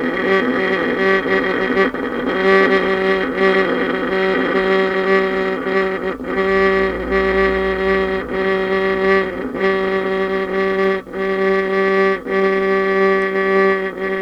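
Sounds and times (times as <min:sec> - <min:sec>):
violin extended technique: 0:00.2 - 0:14.1.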